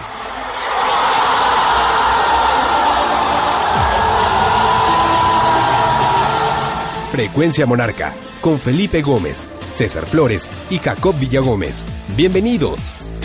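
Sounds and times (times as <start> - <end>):
large stadium crowd roaring: 0.0 - 7.5
speech: 7.2 - 13.1.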